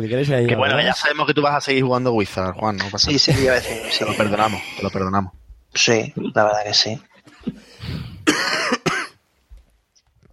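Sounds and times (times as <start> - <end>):
speech: 0.0 - 7.7
person coughing harshly: 3.3 - 5.0, 8.2 - 9.2
person breathing: 3.4 - 5.0, 7.4 - 8.3
throat-clearing rasp: 3.4 - 5.0.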